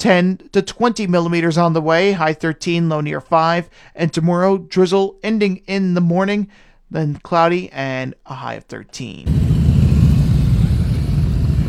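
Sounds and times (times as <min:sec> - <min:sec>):
speech: 0:00.0 - 0:09.4
motorcycle engines rumbling as bikes arrive in a parking lot: 0:09.3 - 0:11.6.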